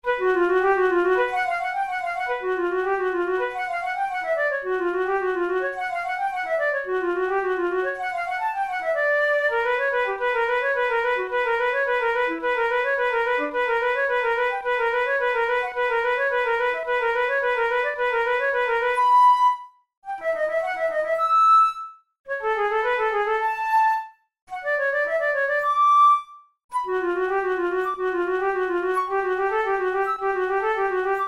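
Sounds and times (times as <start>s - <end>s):
flute study: 0.0s - 31.2s.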